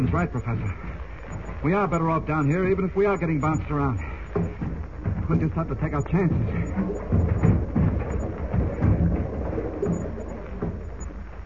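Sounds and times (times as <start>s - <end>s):
deep rumbling thunder in a hurricane storm: 0.0s - 11.4s
steady heavy rain in a hurricane storm: 0.0s - 11.4s
speech: 0.1s - 1.0s, 1.6s - 4.6s, 5.3s - 6.9s.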